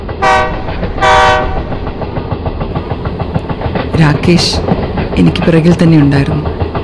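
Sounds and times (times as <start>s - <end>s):
train wheels clickety-clack on the rails: 0.0s - 6.8s
train horn blasts as a train arrives at a railway platform: 0.2s - 1.6s
speech: 4.0s - 6.5s.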